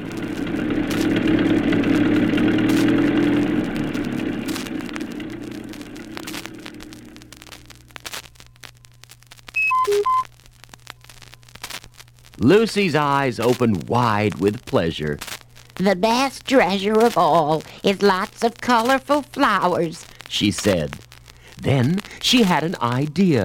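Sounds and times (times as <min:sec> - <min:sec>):
car engine running as a car drives away: 0:00.0 - 0:08.0
speech: 0:12.5 - 0:21.0, 0:21.6 - 0:23.4.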